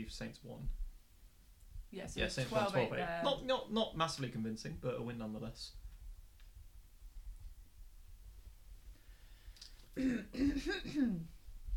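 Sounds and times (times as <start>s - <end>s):
speech: 0.0s - 0.8s, 1.9s - 5.8s, 10.0s - 11.4s
person clearing throat: 10.0s - 11.4s.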